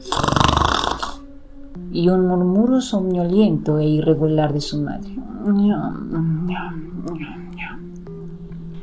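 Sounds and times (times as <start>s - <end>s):
father snoring asleep in his bedroom: 0.0s - 1.2s
speech: 2.0s - 7.9s.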